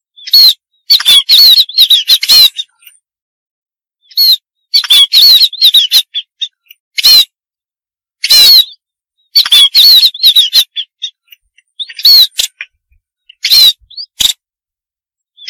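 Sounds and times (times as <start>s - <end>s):
munia thin quavering whistles: 0.1s - 2.9s, 4.0s - 7.4s, 8.2s - 14.4s
munia rasping bursts and chattering: 0.2s - 2.9s, 4.0s - 7.3s, 8.2s - 14.4s.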